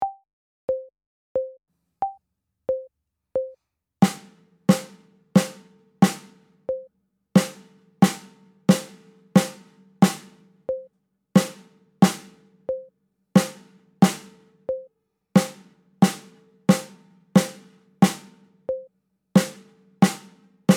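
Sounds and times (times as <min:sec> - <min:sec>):
metronome click: 0:01.4 - 0:03.6, 0:06.7 - 0:06.9, 0:10.7 - 0:10.9, 0:12.7 - 0:12.9, 0:14.7 - 0:14.9, 0:18.7 - 0:18.9
snare drum duet: 0:04.0 - 0:06.5, 0:07.4 - 0:10.5, 0:11.4 - 0:12.5, 0:13.4 - 0:14.5, 0:15.4 - 0:18.5, 0:19.4 - 0:20.7.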